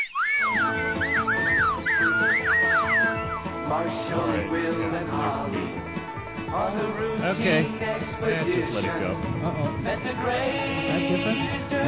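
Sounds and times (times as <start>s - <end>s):
slide whistle swooping up and down: 0.0s - 3.6s
speech: 3.8s - 11.8s.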